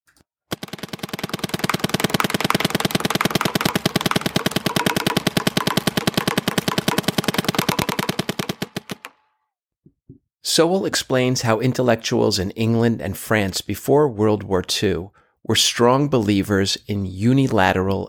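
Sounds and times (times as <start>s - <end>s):
expensive paintball gun firing: 0.5s - 9.2s
speech: 10.6s - 18.0s.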